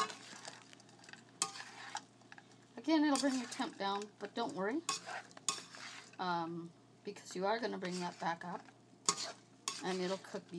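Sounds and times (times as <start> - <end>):
ingredients thrown into a hot pan sizzling: 1.4 - 2.1, 3.0 - 6.5, 7.2 - 10.5
speech: 2.8 - 5.4, 6.2 - 8.8, 9.8 - 10.5.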